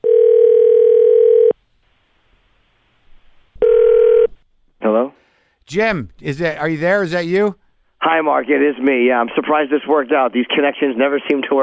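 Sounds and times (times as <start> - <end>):
telephone line ringing tone: 0.0 - 1.6, 3.6 - 4.3
speech: 5.7 - 11.6.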